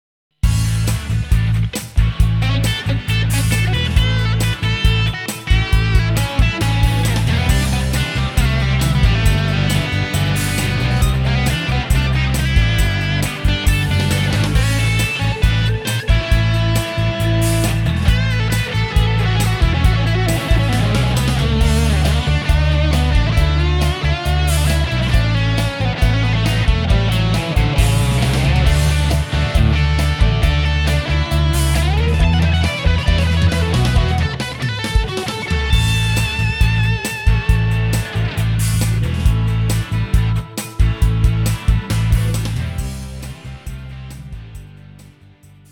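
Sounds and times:
classic rock guitar solo through amplifier stack: 0.5s - 44.6s.

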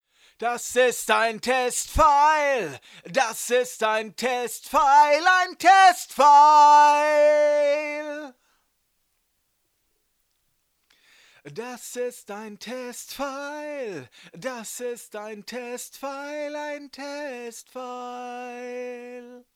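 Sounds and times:
vocals through MD421 preamp: 0.0s - 8.7s, 10.9s - 19.5s.

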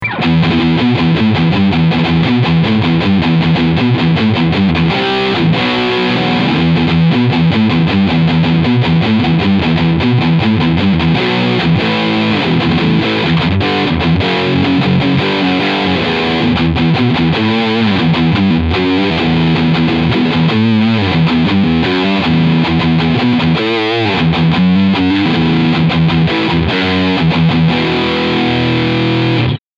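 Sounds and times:
high gain riff: 0.0s - 29.6s.

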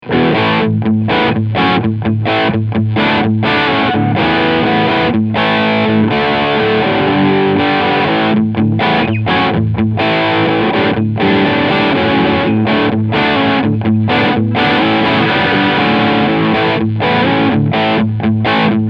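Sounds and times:
crunchy guitar sound from a bridge pickup: 0.0s - 18.8s.

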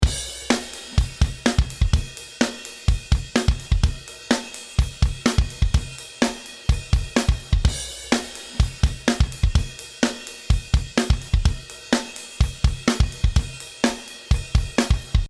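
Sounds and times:
drums: 0.0s - 15.2s.

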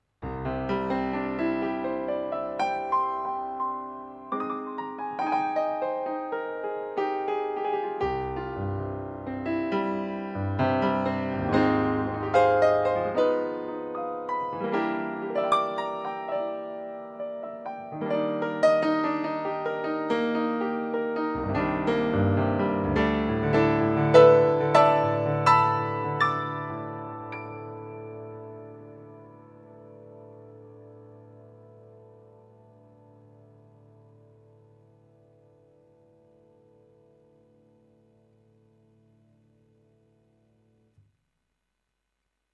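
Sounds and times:
Japanese grand piano: 0.0s - 40.6s.

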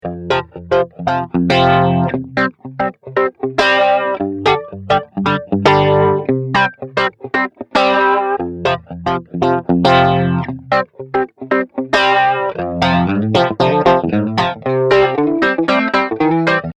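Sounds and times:
flanged guitar: 0.0s - 16.7s.

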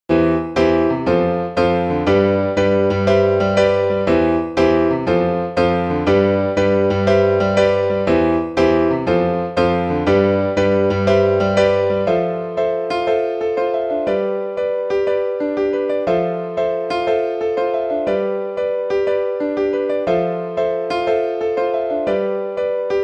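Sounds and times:
pop piano: 0.1s - 23.0s.

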